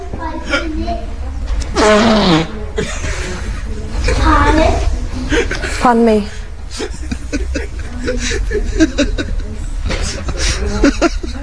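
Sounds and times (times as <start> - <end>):
person imitating farting by mouth: 1.7 - 2.6
laughter: 2.8 - 11.4
speech: 5.8 - 7.0, 8.1 - 9.4.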